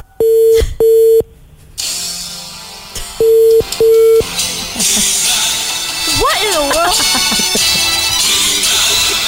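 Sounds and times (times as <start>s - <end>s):
phone line electronic ringing tones: 0.2s - 1.2s, 3.2s - 4.3s
laughter: 4.4s - 9.2s.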